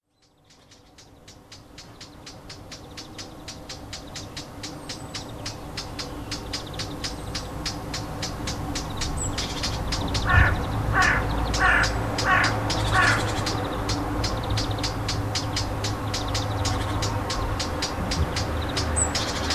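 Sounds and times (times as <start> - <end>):
warbler hard dry clicking alarm notes: 0.2 - 19.5
harsh grating warbler calls: 0.6 - 19.5.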